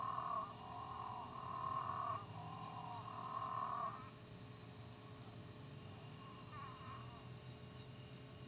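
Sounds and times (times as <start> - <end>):
Moreira's dwarf frog Physalaemus moreirae droning calls: 0.0 - 4.2, 5.9 - 7.4
low background hum: 0.0 - 8.4.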